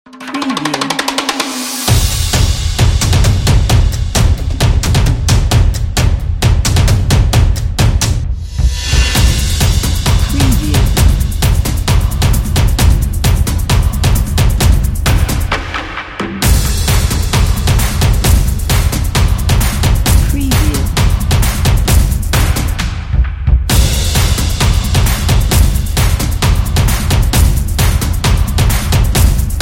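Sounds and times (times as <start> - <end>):
percussion opener: 0.1 - 29.5.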